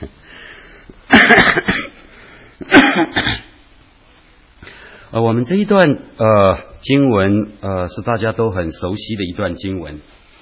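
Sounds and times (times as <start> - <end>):
coughing and throat clearing: 1.1 - 2.0, 2.6 - 3.6
speech: 5.2 - 10.2.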